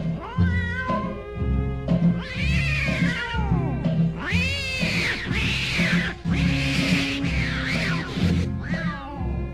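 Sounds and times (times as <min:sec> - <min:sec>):
tomcats yowling in a fight: 0:00.2 - 0:01.3, 0:02.1 - 0:09.3
cats hissing: 0:02.0 - 0:09.3.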